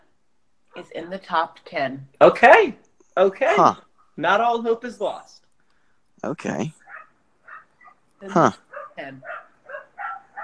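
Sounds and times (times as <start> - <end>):
speech: 0.8 - 5.4, 6.2 - 6.8, 8.2 - 9.4
dog barking: 6.8 - 8.0, 8.6 - 10.4.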